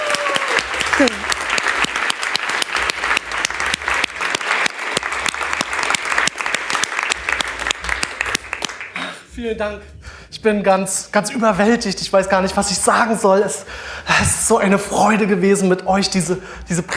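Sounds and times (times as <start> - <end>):
audience applause at a premiere: 0.0 - 9.1
speech: 1.0 - 1.3, 9.4 - 16.9.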